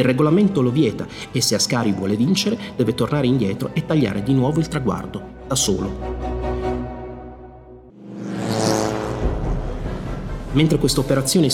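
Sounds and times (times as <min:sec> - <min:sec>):
speech: 0:00.0 - 0:06.4, 0:10.6 - 0:11.5
vintage race car engine idling and accelerating: 0:08.0 - 0:10.4.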